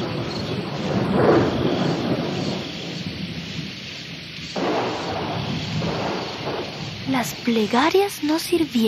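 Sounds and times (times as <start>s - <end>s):
low rumbling thunder: 0.0s - 8.2s
heavy rain pouring: 0.0s - 8.8s
speech: 7.2s - 8.8s.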